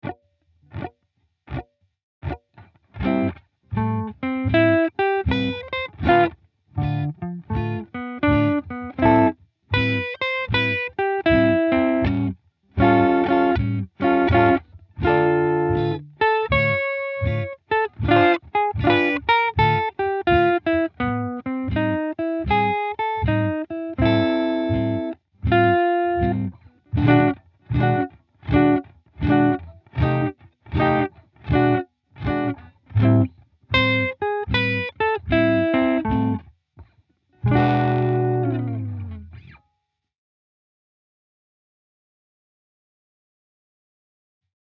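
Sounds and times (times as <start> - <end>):
slow blues track: 3.0 - 36.4, 37.4 - 39.3.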